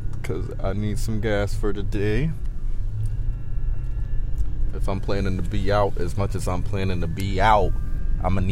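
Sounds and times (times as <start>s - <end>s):
car driving: 0.0s - 8.5s
faint tonal hum: 0.0s - 8.5s
road noise: 0.0s - 8.5s
speech: 0.3s - 3.1s, 4.8s - 8.5s.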